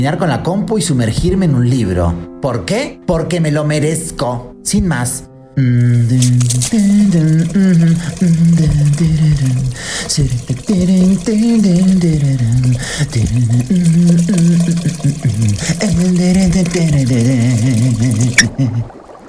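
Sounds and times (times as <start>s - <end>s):
speech: 0.0s - 19.0s
water sloshing and splashing in a bath: 6.0s - 18.5s.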